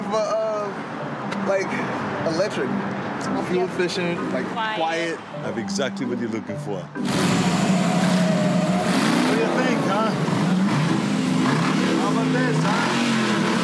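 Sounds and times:
speech: 0:00.1 - 0:00.4, 0:01.5 - 0:07.4
car engine revving hard and loud: 0:06.9 - 0:13.6.

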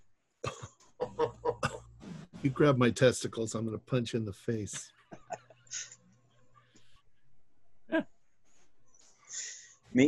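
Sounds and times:
person coughing: 0:00.4 - 0:01.9
laughter: 0:01.0 - 0:01.6, 0:02.5 - 0:05.6
speech: 0:02.4 - 0:05.0.

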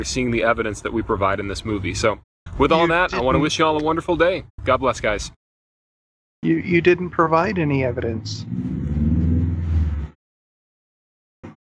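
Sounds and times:
speech: 0:00.0 - 0:05.4, 0:06.4 - 0:08.8
car passing with a loud low engine rumble: 0:07.2 - 0:10.2.

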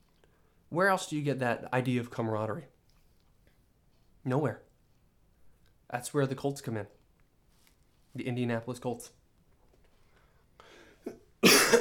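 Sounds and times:
speech: 0:00.7 - 0:02.7, 0:04.2 - 0:04.6, 0:05.9 - 0:07.0, 0:08.2 - 0:09.2
person clearing throat and hacking up phlegm: 0:11.0 - 0:11.8.

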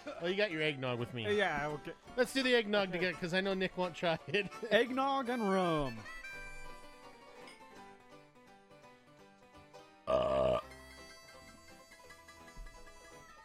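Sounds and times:
speech: 0:00.0 - 0:06.2, 0:10.1 - 0:10.4
music: 0:00.0 - 0:13.4
burp after drinking eggnog: 0:10.0 - 0:10.8.

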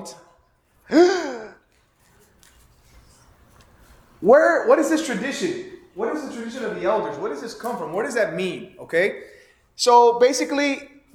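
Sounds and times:
speech: 0:00.0 - 0:00.2, 0:00.9 - 0:01.2, 0:04.2 - 0:11.1
dramatic gasp: 0:00.9 - 0:01.6.

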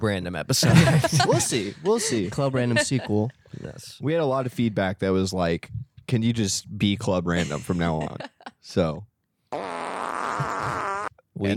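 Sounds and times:
speech: 0:00.0 - 0:09.1, 0:11.4 - 0:11.5
laughter: 0:00.6 - 0:03.4, 0:07.3 - 0:08.6
fart noise: 0:09.5 - 0:11.2.

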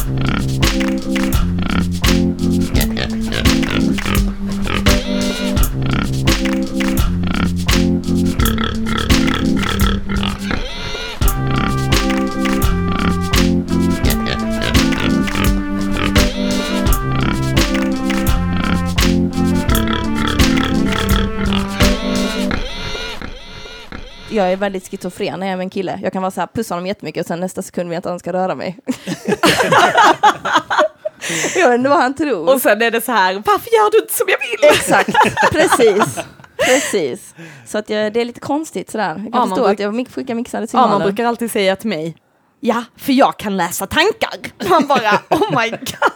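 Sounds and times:
pig grunting and oinking while being fed: 0:00.0 - 0:00.7, 0:01.4 - 0:06.3, 0:07.0 - 0:11.8, 0:14.0 - 0:17.5, 0:19.7 - 0:21.8
steady tonal music-like backdrop: 0:00.0 - 0:10.5, 0:11.2 - 0:22.7
speech: 0:00.1 - 0:01.6, 0:24.4 - 0:46.1
laughter: 0:28.9 - 0:31.8, 0:34.3 - 0:37.1, 0:44.6 - 0:46.1.

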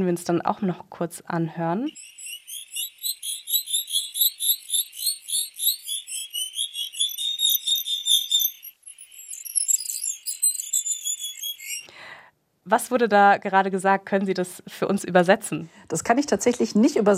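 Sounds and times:
speech: 0:00.0 - 0:02.2, 0:12.7 - 0:17.1
greater sac-winged bat pup babbling: 0:01.8 - 0:11.9.

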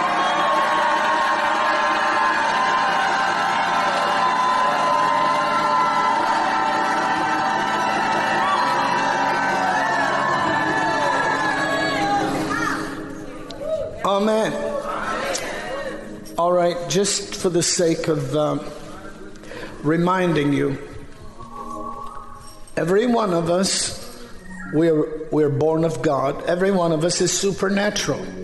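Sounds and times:
audience shouting, whooping and cheering: 0:00.0 - 0:16.2
speech: 0:16.9 - 0:18.8, 0:19.8 - 0:20.9, 0:22.8 - 0:24.0, 0:24.7 - 0:28.4.

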